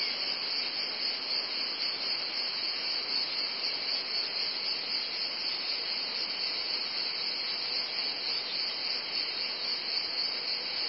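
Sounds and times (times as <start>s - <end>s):
cicadas producing a loud unbroken high-pitched drone: 0.0s - 10.8s.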